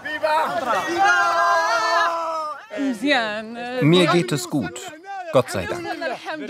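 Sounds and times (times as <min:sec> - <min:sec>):
crowd of young men shouting and cheering: 0:00.0 - 0:03.1
speech: 0:02.9 - 0:06.4.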